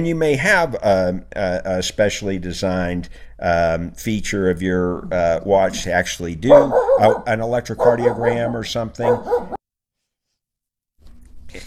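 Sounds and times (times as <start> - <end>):
speech: 0.0 - 9.6
puppy squealing yelp in a radio studio: 6.5 - 9.6.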